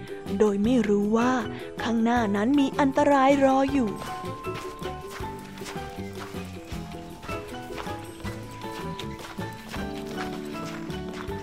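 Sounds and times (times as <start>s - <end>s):
music: 0.0s - 11.4s
speech: 0.3s - 4.7s
deer hooves walking to a feeding tree: 2.4s - 11.4s.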